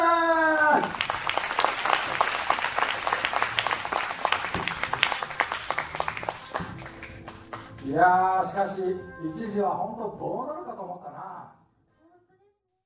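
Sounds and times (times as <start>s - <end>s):
group applauding: 0.0s - 8.6s
speech: 8.0s - 10.6s.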